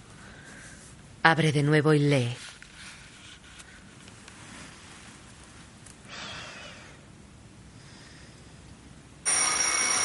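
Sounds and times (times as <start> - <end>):
speech: 1.2 - 2.5
alarm clock ringing: 9.2 - 10.0.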